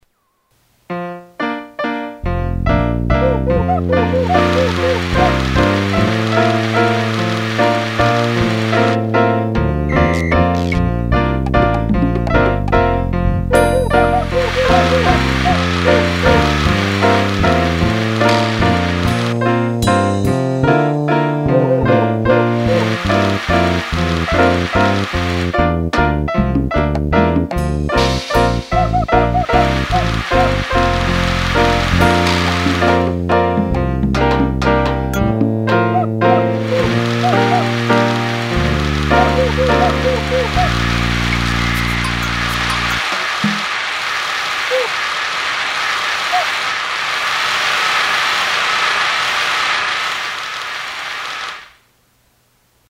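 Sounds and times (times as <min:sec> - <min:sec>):
waltz music: 0:01.0 - 0:43.1
applause: 0:04.1 - 0:09.0, 0:14.4 - 0:19.4, 0:22.6 - 0:25.6, 0:29.7 - 0:33.1, 0:36.7 - 0:51.8.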